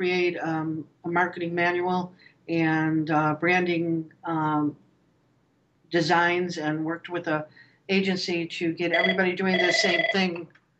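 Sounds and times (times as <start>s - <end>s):
speech: 0.0s - 4.8s, 5.9s - 10.6s
telephone ringing with electronic trill: 8.9s - 10.4s.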